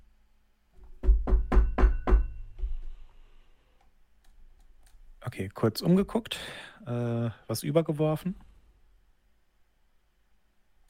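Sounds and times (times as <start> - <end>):
heavy knocks on a wooden front door: 0.9 - 2.8
speech: 5.2 - 8.5.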